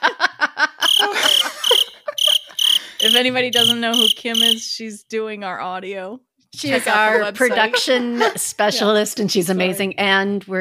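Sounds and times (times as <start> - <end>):
laughter: 0.0 - 3.2, 6.7 - 9.0
crickets chirping: 0.8 - 4.6
speech: 3.1 - 10.5.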